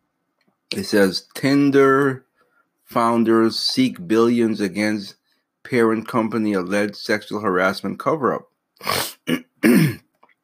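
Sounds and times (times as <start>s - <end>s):
speech: 0.8s - 2.3s, 2.9s - 9.8s
person clearing throat: 8.8s - 10.2s.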